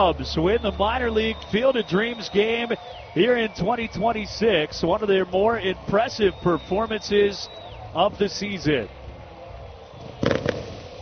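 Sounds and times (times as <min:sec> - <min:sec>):
speech: 0:00.0 - 0:09.0
fireworks going off in the evening after a minor league baseball game: 0:10.0 - 0:11.0.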